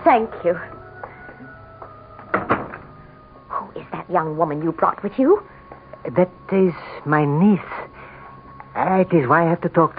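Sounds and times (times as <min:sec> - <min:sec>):
speech: 0:00.0 - 0:00.8, 0:04.1 - 0:07.8, 0:08.8 - 0:09.9
humming: 0:00.0 - 0:09.0
door clunks as it opens and shuts: 0:02.2 - 0:03.0.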